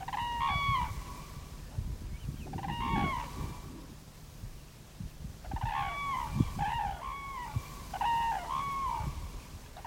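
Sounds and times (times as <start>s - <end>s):
migrating crane flock calling: 0.0s - 1.4s, 2.4s - 3.7s, 5.4s - 9.8s.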